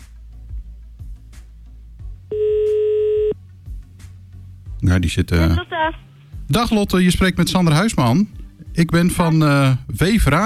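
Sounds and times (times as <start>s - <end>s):
speech: 2.3s - 2.5s, 4.9s - 10.4s
ringing tone beep of an outgoing telephone call: 2.3s - 3.4s.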